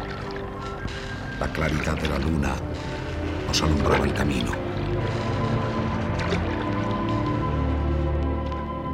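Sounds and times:
rowing boat oars sloshing and splashing in calm bay water: 0.0 - 8.8
speech: 1.4 - 2.9, 3.5 - 4.7.

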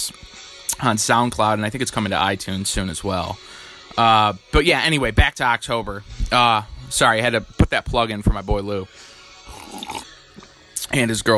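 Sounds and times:
speech: 0.0 - 9.1, 10.9 - 11.3
person slurping coffee: 9.5 - 10.1.

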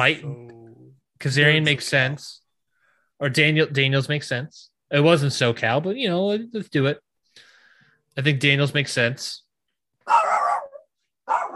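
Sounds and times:
speech: 0.0 - 0.5, 1.2 - 2.4, 3.2 - 7.0, 8.2 - 9.4
dog barking: 10.0 - 11.5.

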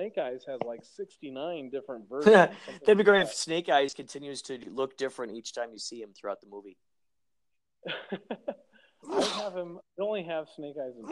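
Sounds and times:
speech: 0.0 - 6.9, 7.8 - 11.1
person sneezing: 9.0 - 9.6.

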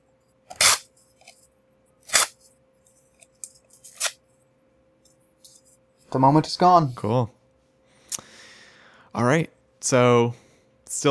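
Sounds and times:
paper game card being ripped up: 0.5 - 0.9, 2.0 - 2.4, 3.8 - 4.2
speech: 6.1 - 7.4, 9.2 - 10.4.

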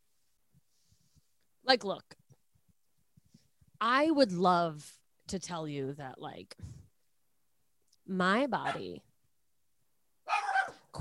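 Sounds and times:
speech: 1.7 - 2.2, 3.8 - 6.8, 8.1 - 9.1
dog barking: 8.6 - 8.9, 10.3 - 10.9.

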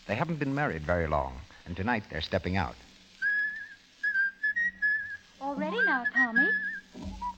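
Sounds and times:
speech: 0.1 - 2.9, 5.6 - 7.3
man whistling the melody of an old song: 3.2 - 7.3.

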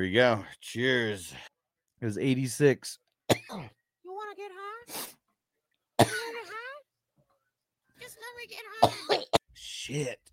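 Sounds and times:
speech: 0.0 - 3.8, 4.8 - 5.2, 6.0 - 6.5, 9.8 - 10.3
harsh cough into a microphone: 3.3 - 3.8, 6.0 - 6.5, 8.8 - 9.5.

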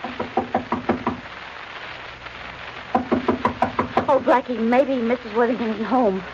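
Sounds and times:
firm knocking on a wooden door: 0.0 - 1.2, 2.9 - 4.1
speech: 4.1 - 6.3.

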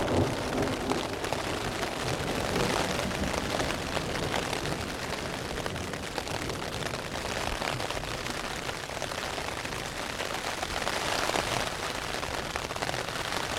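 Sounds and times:
low rumble of thunder: 0.0 - 8.1
heavy rain and hail drumming on a tent overhead: 0.0 - 13.5.

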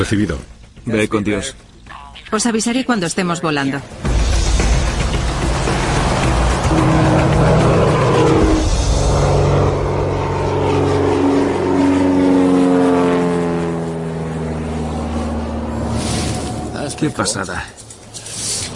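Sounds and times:
speech: 0.0 - 4.4, 17.0 - 17.8
airplane engine roaring while taxiing before a skydive: 3.8 - 18.7.

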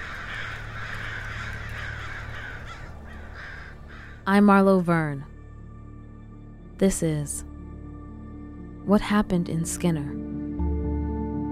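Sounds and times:
several crows cawing harshly: 0.0 - 4.4
speech: 4.3 - 5.3, 6.8 - 7.5, 8.9 - 10.4.

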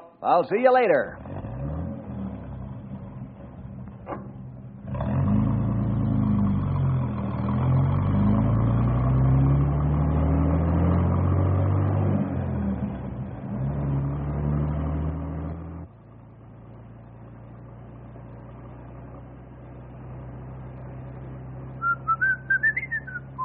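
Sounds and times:
speech: 0.2 - 1.2
bus engine revving as the bus pulls away: 1.1 - 23.4
bus engine idling with a rattly rumble: 2.1 - 7.9, 15.9 - 23.4.

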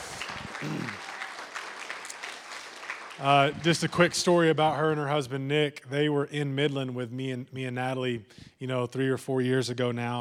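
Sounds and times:
audience applause at a church service: 0.0 - 4.6
speech: 3.2 - 10.2.

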